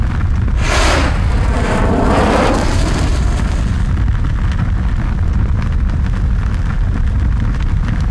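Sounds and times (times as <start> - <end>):
lava: 0.0 - 8.0
flame sizzling: 0.4 - 5.1.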